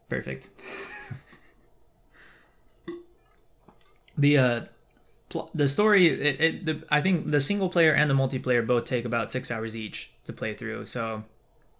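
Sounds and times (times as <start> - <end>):
speech: 0.1 - 1.4, 4.2 - 4.7, 5.3 - 11.3
slurping sip of water: 2.8 - 5.3.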